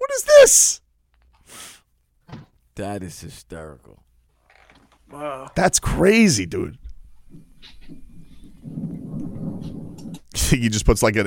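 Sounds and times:
speech: 0.2s - 0.8s, 2.8s - 4.1s, 5.1s - 8.9s, 10.4s - 11.2s
thunder rumbling: 7.3s - 11.0s.

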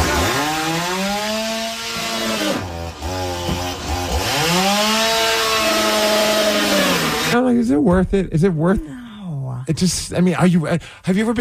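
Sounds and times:
chainsaw cutting into a television: 0.0s - 7.4s
speech: 7.9s - 9.0s, 9.7s - 11.3s.

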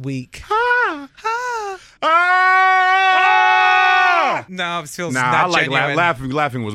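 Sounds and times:
speech: 0.0s - 1.0s, 2.0s - 2.6s, 4.4s - 6.7s
person screaming as scream therapy: 0.5s - 4.5s.

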